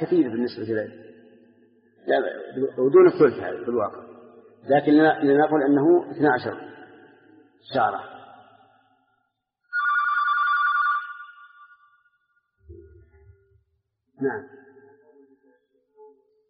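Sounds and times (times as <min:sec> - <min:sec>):
speech: 0:00.0 - 0:01.2, 0:02.0 - 0:06.8, 0:07.6 - 0:08.2, 0:14.2 - 0:14.6
electronic telephone ring during a lecture: 0:09.7 - 0:11.8.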